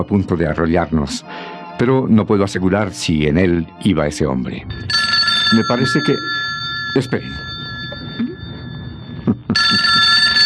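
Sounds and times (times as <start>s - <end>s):
speech: 0.0s - 7.5s
telephone with a loud steady electronic ring: 4.7s - 10.4s.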